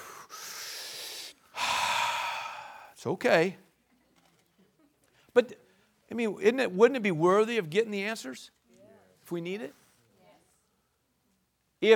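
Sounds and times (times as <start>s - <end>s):
deep breath: 0.0s - 3.0s
speech: 3.0s - 3.6s, 5.4s - 8.6s, 9.3s - 9.8s.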